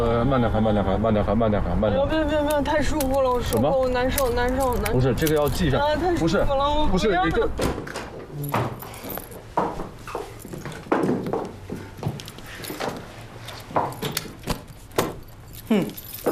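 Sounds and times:
speech: 0:00.2 - 0:08.7
keys jangling as they are passed from hand to hand: 0:02.5 - 0:05.7, 0:08.3 - 0:09.5, 0:10.1 - 0:11.3, 0:12.0 - 0:16.3.

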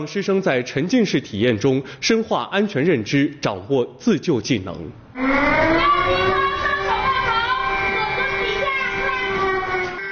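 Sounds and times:
speech: 0:00.0 - 0:05.9
primary school earthquake drill alarm wailing: 0:05.2 - 0:10.1.

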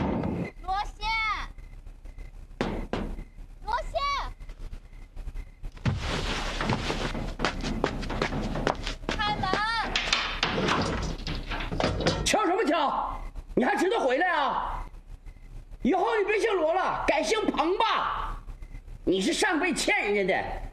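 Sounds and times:
steady noise: 0:00.0 - 0:20.7
person knocking at a door: 0:02.6 - 0:03.3, 0:06.7 - 0:11.4
footsteps: 0:05.7 - 0:12.4
door being opened: 0:05.8 - 0:12.4
speech: 0:19.2 - 0:20.6.

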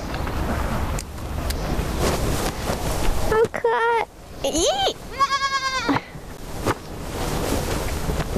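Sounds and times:
steady wash of noise: 0:00.0 - 0:08.3
speech: 0:04.5 - 0:05.0
young sheep or goat bleating: 0:05.1 - 0:06.1.

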